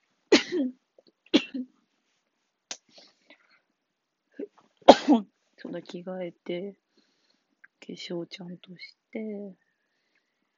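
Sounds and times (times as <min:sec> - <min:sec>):
person sneezing: 0:04.9 - 0:05.2
speech: 0:05.9 - 0:06.8, 0:07.9 - 0:09.6.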